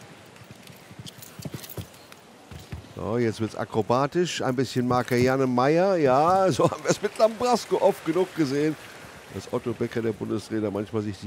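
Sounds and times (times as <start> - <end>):
ridden horse hooves clip-clopping during show-jumping round: 0.0 - 3.2, 4.5 - 6.8
speech: 3.0 - 11.2.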